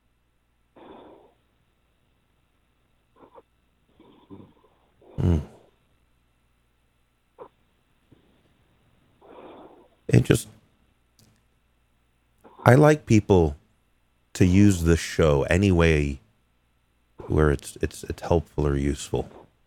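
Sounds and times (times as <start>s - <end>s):
male caller snoring over a muffled phone line: 4.0s - 5.7s
speech: 10.2s - 10.6s, 12.7s - 13.6s, 14.4s - 16.2s, 17.3s - 19.4s.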